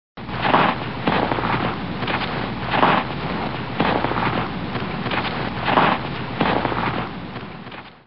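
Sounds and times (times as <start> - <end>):
slow footsteps in snow: 0.2 - 8.0.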